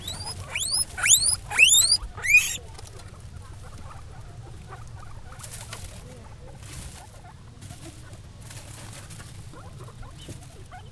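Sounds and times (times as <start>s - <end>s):
guinea pig wheeking at a zoo in Jászberény: 0.0s - 2.6s.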